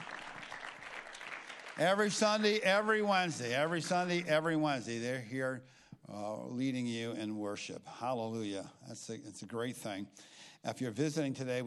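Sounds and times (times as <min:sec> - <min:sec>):
audience applauding in a large room: 0:00.0 - 0:02.6
speech: 0:01.8 - 0:11.6.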